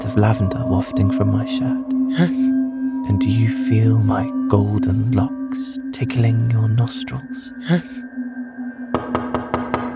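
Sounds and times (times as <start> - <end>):
speech: 0.2 - 8.1
quick knocks on a door: 9.0 - 9.9.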